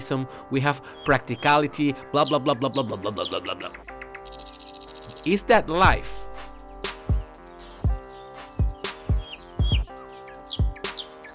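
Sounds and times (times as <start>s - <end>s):
speech: 0.1s - 4.4s, 5.2s - 6.2s
bird chirping and tweeting: 0.8s - 5.5s, 6.2s - 11.3s
deep booming percussive thumps: 5.8s - 8.0s.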